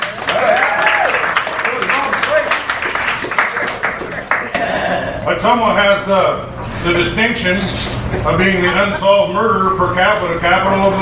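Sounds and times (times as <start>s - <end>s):
people whooping and cheering: 0.0s - 4.6s
sizable audience clapping: 0.0s - 5.0s
speech: 5.4s - 11.0s.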